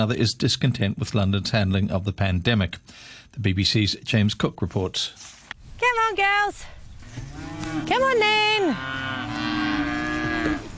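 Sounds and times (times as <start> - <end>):
speech: 0.0 - 6.8, 7.4 - 9.4
cow mooing on a farm in Scotland: 7.2 - 10.7.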